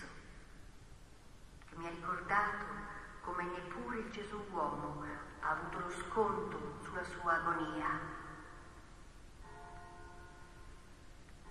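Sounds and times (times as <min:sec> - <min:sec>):
steady noise: 0:00.0 - 0:11.4
speech: 0:01.8 - 0:08.2
church bells ringing: 0:09.4 - 0:11.4.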